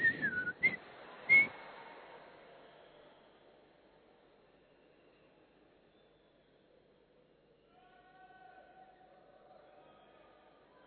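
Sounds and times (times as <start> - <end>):
person whistling: 0.0 - 1.5.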